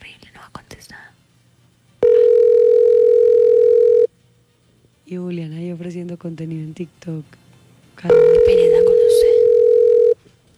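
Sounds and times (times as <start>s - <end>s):
telephone tone while a number is dialed: 2.0s - 4.1s, 8.1s - 10.2s
speech: 5.1s - 7.4s, 8.0s - 9.3s.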